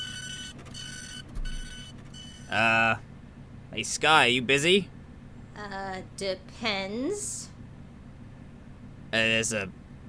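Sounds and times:
fax machine printing a page: 0.0s - 2.5s
speech: 2.5s - 3.1s, 3.7s - 5.0s, 5.6s - 7.4s, 9.1s - 9.8s.

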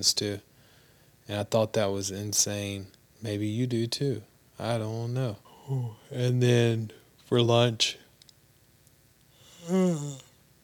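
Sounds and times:
speech: 0.0s - 0.5s, 1.3s - 8.0s, 9.6s - 10.2s
person yawning: 9.4s - 10.4s.

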